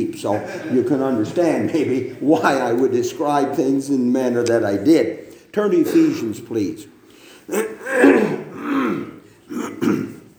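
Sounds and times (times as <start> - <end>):
speech: 0.2 - 9.0
man clearing his throat: 5.8 - 6.3, 7.5 - 10.3.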